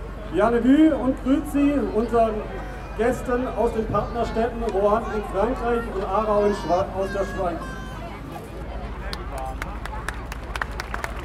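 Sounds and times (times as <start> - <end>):
crowd murmur with indistinct voices: 0.0 - 11.2
speech: 0.3 - 7.8
audience clapping at a fire brigade event: 9.1 - 11.2.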